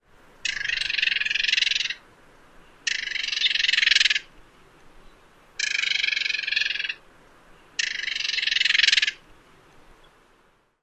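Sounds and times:
bird scold call: 0.4 - 2.0, 2.8 - 4.3, 5.0 - 7.0, 7.8 - 9.2.

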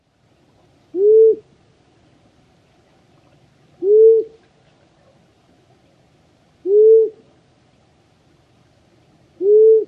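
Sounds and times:
Long-eared Owl hooting: 0.9 - 1.5, 3.8 - 4.4, 6.6 - 7.2, 9.4 - 9.8.

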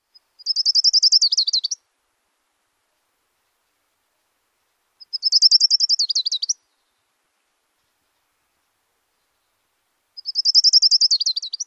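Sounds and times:
Orange-crowned Warbler singing: 0.1 - 1.8, 5.0 - 7.1, 10.2 - 11.6.

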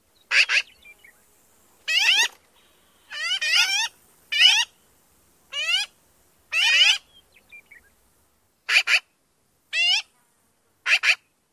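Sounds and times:
Black-billed Magpie various calls: 0.3 - 0.8, 1.9 - 2.4, 3.1 - 4.8, 5.5 - 7.8, 8.7 - 9.1, 9.7 - 10.1, 10.8 - 11.3.

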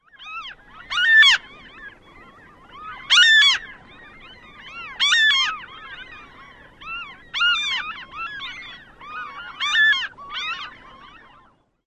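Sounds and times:
ring-billed gull calls: 0.0 - 11.6.

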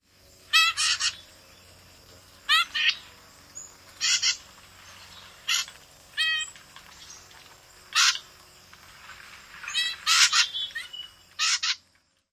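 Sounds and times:
Blue-headed Vireo family group calling: 0.4 - 1.8, 2.4 - 4.5, 5.4 - 6.6, 7.9 - 8.3, 9.6 - 11.8.

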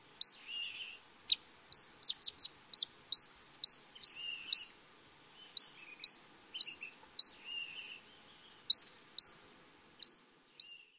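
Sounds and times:
pygmy nuthatch calls: 0.2 - 9.4, 10.0 - 10.9.

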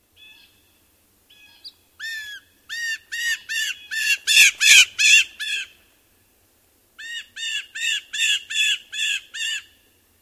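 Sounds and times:
blue jay call imitation: 1.3 - 5.7, 7.0 - 9.8.

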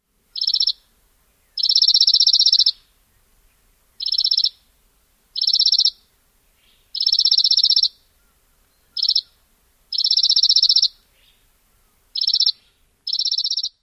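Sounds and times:
Chipping Sparrow rapid-fire dawn song: 0.3 - 0.8, 1.5 - 2.9, 4.0 - 4.6, 5.4 - 6.0, 6.6 - 8.0, 8.8 - 11.4, 12.2 - 13.8.

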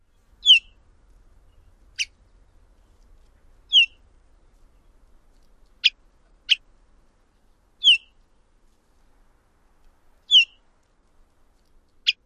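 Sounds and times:
olive warbler calls: 0.0 - 0.8, 1.4 - 3.0, 3.7 - 4.0, 5.7 - 6.6, 7.8 - 8.2, 10.3 - 10.6, 11.9 - 12.2.

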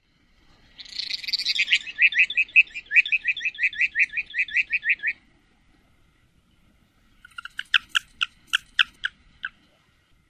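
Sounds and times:
Mountain Plover flight song: 0.7 - 5.2, 7.2 - 9.1.

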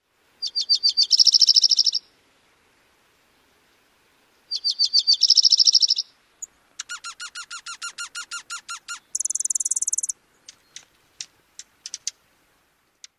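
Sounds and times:
Dark-eyed Junco singing two-parted songs: 0.4 - 2.1, 4.4 - 12.2.

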